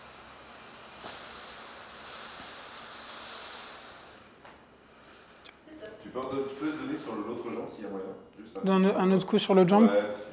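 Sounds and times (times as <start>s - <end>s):
steam iron hissing while ironing trousers: 0.0s - 5.7s
speech: 6.0s - 10.3s.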